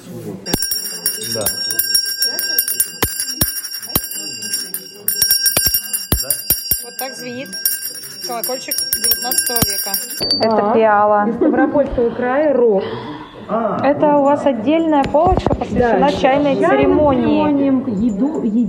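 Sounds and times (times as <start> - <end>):
people talking quietly: 0.0 - 18.6
small restored handbell from Nizhny Novgorod Governorate with homemade handle ringing: 0.5 - 10.7
speech: 1.4 - 1.8, 8.3 - 18.6.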